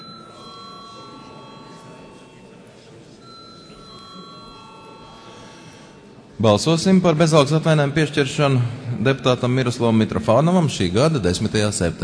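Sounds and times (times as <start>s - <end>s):
parliament voting bell ringing in the chamber: 0.0s - 6.3s
faint murmuring voices: 0.0s - 12.0s
speech: 6.4s - 12.0s.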